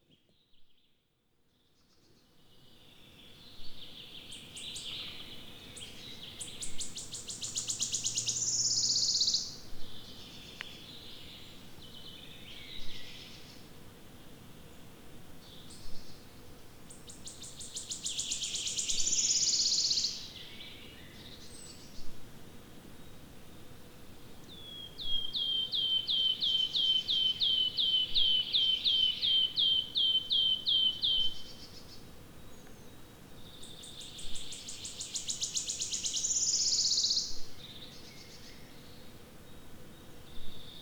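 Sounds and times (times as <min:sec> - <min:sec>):
wood warbler singing: 0:01.8 - 0:13.5, 0:17.0 - 0:22.0, 0:24.4 - 0:39.1.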